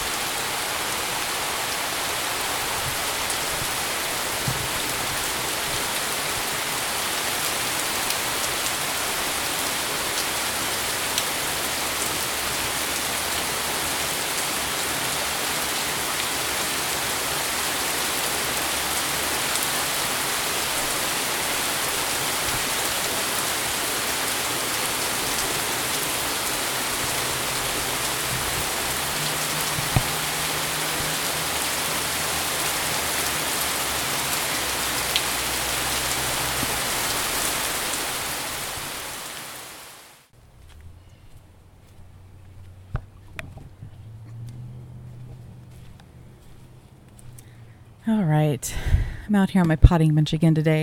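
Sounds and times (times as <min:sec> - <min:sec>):
early evening rainstorm: 0:00.0 - 0:40.3
speech: 0:48.1 - 0:50.8.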